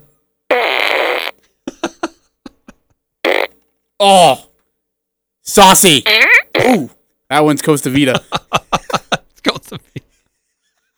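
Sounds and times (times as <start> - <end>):
electronic toy fart gun blasting fart noises: 0.5 - 1.4, 3.3 - 3.5, 6.0 - 6.8
laughter: 1.7 - 2.9, 8.1 - 10.1
speech: 4.0 - 4.5, 5.5 - 8.7.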